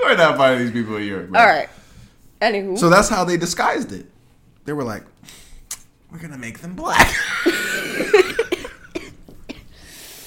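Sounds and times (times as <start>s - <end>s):
speech: 0.0s - 1.8s, 2.4s - 5.4s, 6.1s - 8.4s
person coughing: 7.0s - 9.7s.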